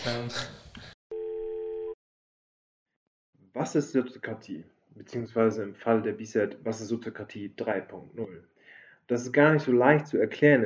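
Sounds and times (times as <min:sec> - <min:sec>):
speech: 0:00.0 - 0:00.6, 0:03.6 - 0:08.5, 0:09.1 - 0:10.6
steady telephone ringback tone: 0:01.1 - 0:02.0.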